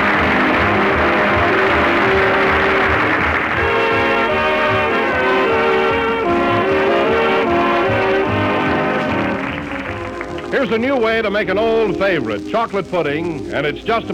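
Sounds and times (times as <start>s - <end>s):
train whistle sounding a loud sustained chord: 0.0s - 10.2s
speech: 10.6s - 14.1s.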